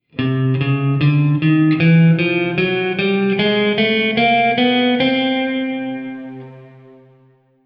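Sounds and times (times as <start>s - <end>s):
chromatic scale in C: 0.4s - 7.6s.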